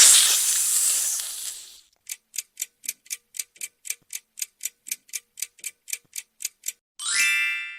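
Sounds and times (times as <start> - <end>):
snake hissing: 0.0 - 1.8.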